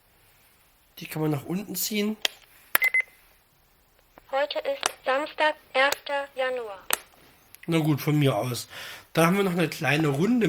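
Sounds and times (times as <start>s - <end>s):
speech: 1.0s - 2.4s, 4.5s - 6.9s, 7.7s - 10.4s
short electronic beeps from a talking alarm clock: 2.8s - 3.1s
sharp click of a talking alarm clock: 6.9s - 7.7s.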